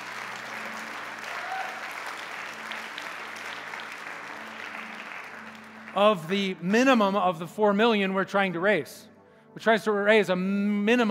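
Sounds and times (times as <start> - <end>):
audience clapping after a fundraising pledge is announced: 0.0 - 7.0
speech: 6.0 - 11.1.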